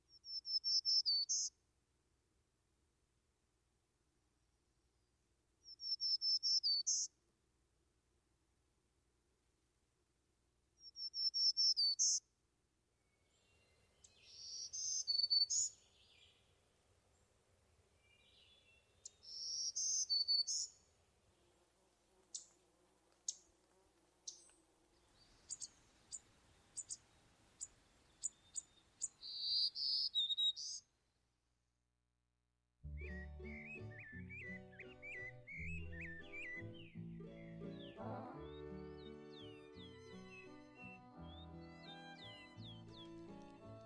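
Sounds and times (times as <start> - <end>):
Black-throated Green Warbler song phrases: 13.4 - 16.4, 18.0 - 30.8, 32.8 - 43.8
faint clicks: 22.2 - 24.6
instrumental music: 32.8 - 43.8.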